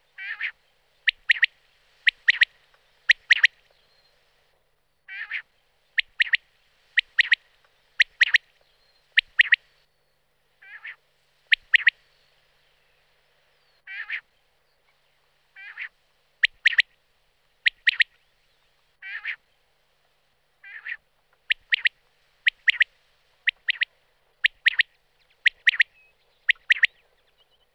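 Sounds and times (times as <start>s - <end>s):
quail: 0.0s - 3.7s, 5.1s - 8.5s, 9.2s - 9.7s, 10.6s - 12.0s, 13.9s - 14.3s, 15.6s - 17.0s, 17.6s - 18.2s, 19.0s - 19.4s, 20.6s - 27.7s.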